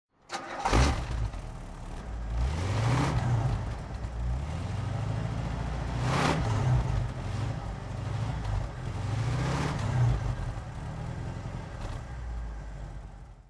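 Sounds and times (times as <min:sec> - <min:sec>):
1971 Bentley T1 engine throttle: 0:00.3 - 0:13.3.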